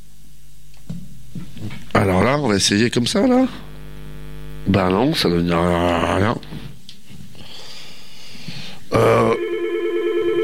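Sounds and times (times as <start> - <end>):
speech: 2.0 - 3.7, 4.7 - 6.7
telephone ringing down a phone line: 9.2 - 10.4.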